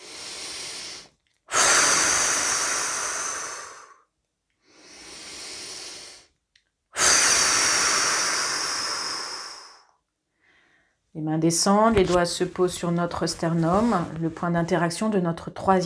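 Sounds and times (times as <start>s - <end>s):
slow exhaling breaths during guided relaxation: 0.0s - 6.3s, 7.0s - 11.0s
speech: 11.2s - 15.8s.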